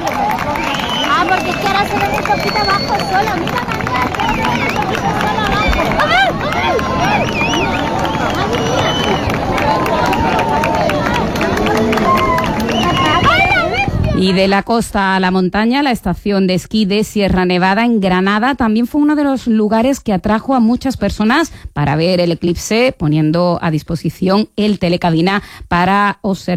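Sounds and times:
large beach crowd cheering and shouting at solar eclipse maximum: 0.0 - 14.3
excited chatter from many voices on a beach: 0.0 - 14.4
speech: 1.5 - 5.6, 14.2 - 26.5.

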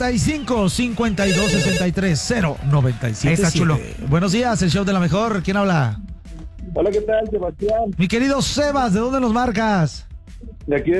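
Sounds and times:
speech: 0.0 - 6.0, 6.8 - 10.1, 10.7 - 10.9
telephone ringing with warbling tone: 1.2 - 2.0.

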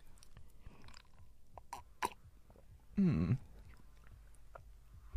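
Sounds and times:
wet mouth clicks: 0.2 - 2.8, 3.3 - 4.7.

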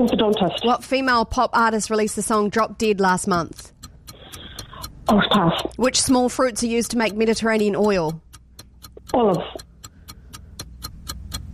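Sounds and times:
speech: 0.0 - 3.8, 5.1 - 8.2, 9.1 - 9.7
quiz clock ticking during a timed question round: 0.0 - 11.5.

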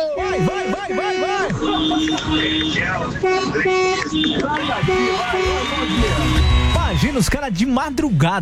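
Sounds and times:
vehicle horn playing a musical tune: 0.0 - 6.8
laughter: 0.0 - 7.0
speech: 0.4 - 8.4.

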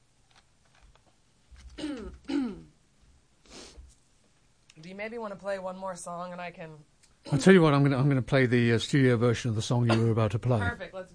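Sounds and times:
person clearing throat of something stuck in it: 1.8 - 2.8, 9.9 - 10.7
speech: 4.9 - 11.1.

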